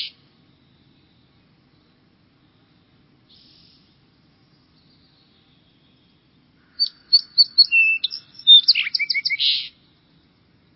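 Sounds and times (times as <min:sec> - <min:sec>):
Song Sparrow singing: 0:00.0 - 0:10.3.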